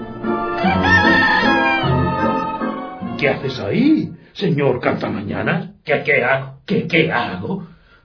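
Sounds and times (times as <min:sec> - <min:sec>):
farm rooster crowing: 0:00.2 - 0:02.8
speech: 0:03.2 - 0:07.7.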